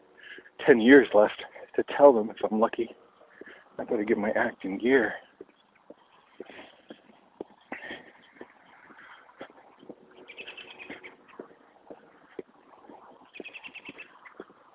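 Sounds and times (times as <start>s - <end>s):
busy outdoor noise: 0.0s - 14.7s
speech: 0.6s - 3.0s, 3.8s - 5.5s
robins chirping: 5.3s - 14.7s.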